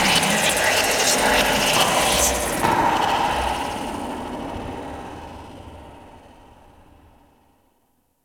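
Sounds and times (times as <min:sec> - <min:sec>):
random corrupted digital artifact noise: 0:00.1 - 0:06.3.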